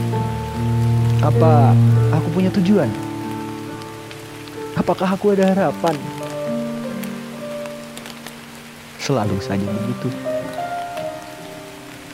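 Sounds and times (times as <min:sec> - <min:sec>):
swoosh: 0:00.0 - 0:03.2
sustained musical tones: 0:00.0 - 0:07.6, 0:09.2 - 0:11.9
rain on a hard surface: 0:00.0 - 0:12.1
speech: 0:01.2 - 0:03.0, 0:04.8 - 0:06.2, 0:09.1 - 0:10.3.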